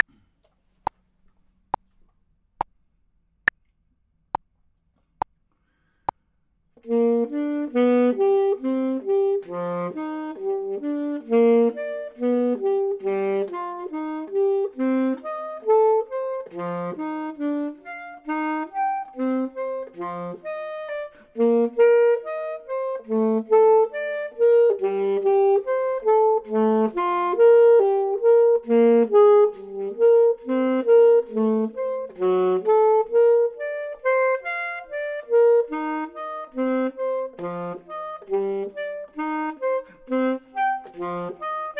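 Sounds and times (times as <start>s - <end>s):
clarinet: 6.8s - 41.7s
saxophone: 6.8s - 41.7s.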